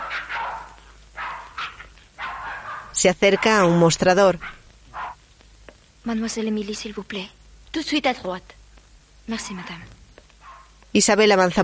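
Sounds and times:
dogs barking and yipping in a waiting room: 0.0s - 3.8s, 4.4s - 5.2s, 10.4s - 10.8s
speech: 3.0s - 4.6s, 6.0s - 8.6s, 9.3s - 10.0s, 10.9s - 11.6s.

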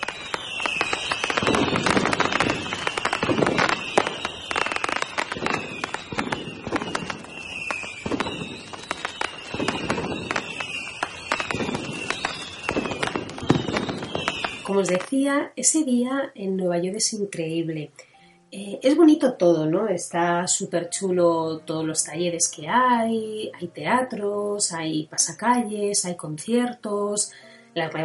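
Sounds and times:
Fourth of July fireworks exploding in New York: 0.0s - 15.4s
speech: 14.8s - 28.0s.

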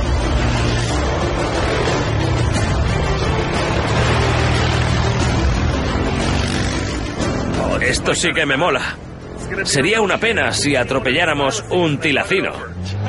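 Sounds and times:
military-use vehicle engine roaring while driving: 0.0s - 13.0s
road noise: 0.0s - 13.0s
speech: 7.9s - 13.0s.

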